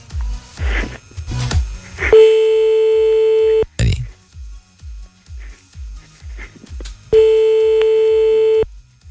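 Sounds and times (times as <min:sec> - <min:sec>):
low regular pulsing: 0:00.0 - 0:09.0
telephone ringback tone on an unanswered call: 0:02.1 - 0:03.7, 0:07.2 - 0:08.7.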